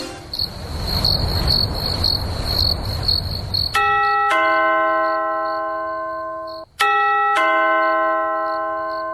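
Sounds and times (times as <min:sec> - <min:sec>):
crickets chirping at night: 0:00.2 - 0:04.2, 0:05.0 - 0:06.8, 0:08.5 - 0:09.1
two-note doorbell chime at a door at night: 0:03.8 - 0:09.1.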